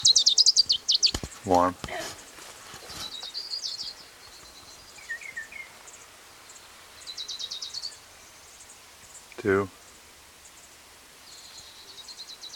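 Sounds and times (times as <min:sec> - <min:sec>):
low hiss: 0:00.0 - 0:12.5
orange-crowned warbler song trills: 0:00.0 - 0:12.5
speech: 0:01.4 - 0:02.0, 0:09.4 - 0:09.8.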